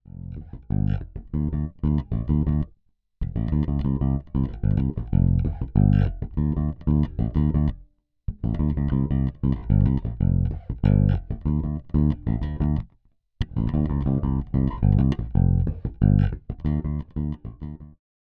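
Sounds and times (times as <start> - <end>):
fingerstyle guitar with tone control open: 0.1 - 18.0.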